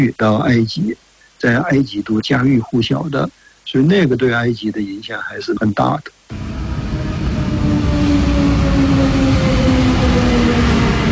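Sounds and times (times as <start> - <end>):
speech: 0.0 - 6.6
electric commuter train running on rails: 6.3 - 11.1.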